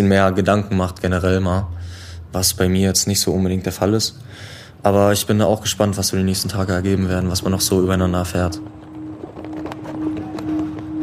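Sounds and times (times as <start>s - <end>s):
speech: 0.0s - 8.8s
faint steady hum: 0.0s - 11.0s
people walking on cobblestone pavement in the old city centre of Prague: 8.2s - 11.0s.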